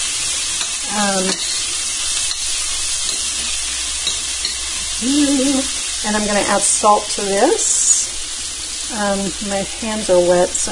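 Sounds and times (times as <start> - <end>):
onions sizzling in hot oil: 0.0 - 10.7
speech: 0.9 - 1.6, 5.0 - 7.8, 8.9 - 10.7.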